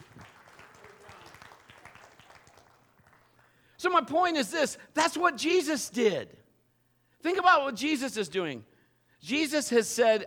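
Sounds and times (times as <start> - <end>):
audience applauding: 0.0 - 3.6
speech: 3.8 - 6.4, 7.2 - 10.2.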